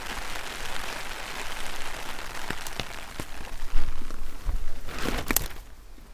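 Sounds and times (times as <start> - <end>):
rain on a plastic umbrella: 0.0 - 6.1.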